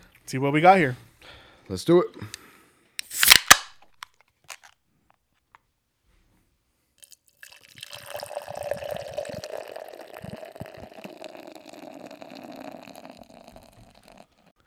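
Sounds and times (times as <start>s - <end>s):
speech: 0.3s - 1.0s, 1.7s - 2.4s
beer bottle opening pop: 3.0s - 4.7s
beer pouring into a glass: 7.0s - 14.5s.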